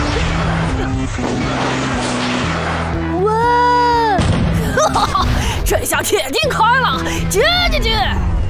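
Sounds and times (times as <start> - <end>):
laughter: 0.0 - 1.2, 4.6 - 7.2
cannon firing a shot: 0.0 - 3.2, 4.2 - 4.9
speech: 5.7 - 8.4.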